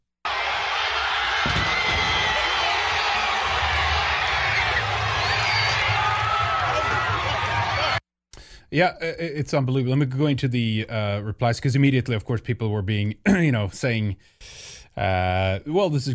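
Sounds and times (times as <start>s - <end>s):
large crowd in Bristol cheering and shouting: 0.3s - 8.0s
people whooping: 0.3s - 8.0s
speech: 8.7s - 16.1s.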